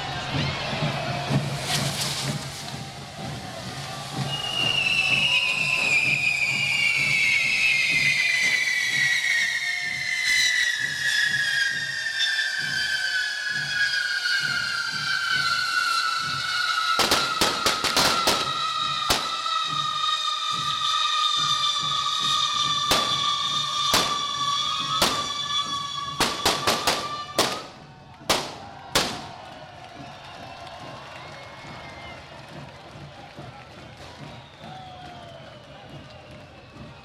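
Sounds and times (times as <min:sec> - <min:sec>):
fireworks spouting from a fire-breathing dragon figure being lit: 0:00.0 - 0:32.2
sharp cracks of fireworks: 0:22.9 - 0:23.2, 0:26.2 - 0:29.4.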